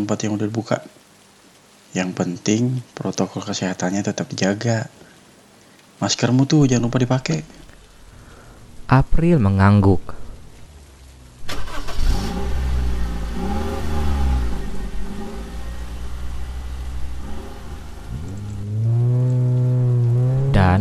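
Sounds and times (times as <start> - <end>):
speech: 0.0 - 1.0, 2.0 - 5.1, 6.0 - 7.6, 8.9 - 10.2
heavy rain hiss: 0.0 - 20.8
car engine humming and revving: 10.4 - 20.8.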